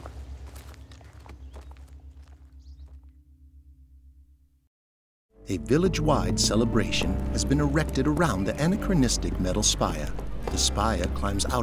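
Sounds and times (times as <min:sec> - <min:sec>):
footsteps of people walking: 0:00.0 - 0:03.2, 0:07.4 - 0:11.6
speech: 0:05.5 - 0:11.6.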